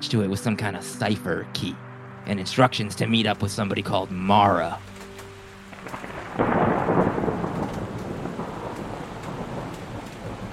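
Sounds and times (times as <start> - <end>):
speech: 0.1 - 4.9, 5.8 - 6.6
steady heavy rain hissing: 4.1 - 10.5
deep roll of thunder: 5.6 - 10.5.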